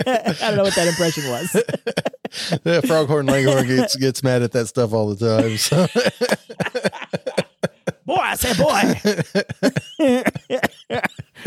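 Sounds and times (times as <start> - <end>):
laughter: 0.0 - 4.2, 5.3 - 11.4
speech: 0.0 - 7.2, 8.4 - 10.7
person coughing into the microphone: 2.5 - 3.9, 8.4 - 11.4.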